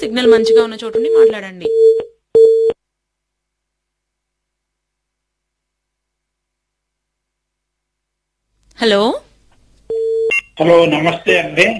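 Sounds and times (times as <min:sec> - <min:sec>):
speech: 0:00.0 - 0:02.1, 0:08.8 - 0:09.3, 0:10.6 - 0:11.7
telephone busy tone beep as a phone call cuts off: 0:00.2 - 0:02.8, 0:09.9 - 0:10.5.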